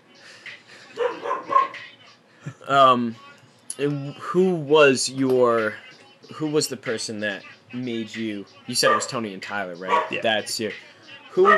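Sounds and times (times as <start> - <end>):
male puppy barking: 1.0 - 1.8, 8.8 - 9.1, 9.9 - 10.2
speech: 2.7 - 11.5.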